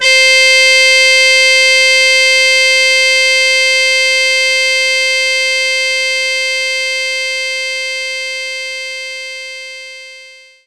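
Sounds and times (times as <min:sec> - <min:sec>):
muted trumpet note C5: 0:00.0 - 0:07.6.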